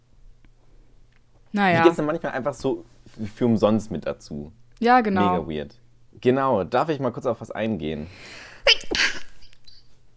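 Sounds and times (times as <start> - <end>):
speech: 1.5 - 9.2
person sneezing: 8.6 - 9.4.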